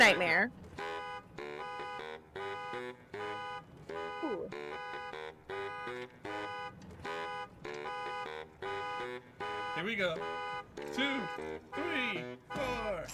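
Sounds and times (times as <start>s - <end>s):
speech: 0.0s - 0.6s, 9.8s - 13.1s
car horn blaring in rhythmic bursts: 0.0s - 13.1s
piece of music: 10.9s - 13.1s.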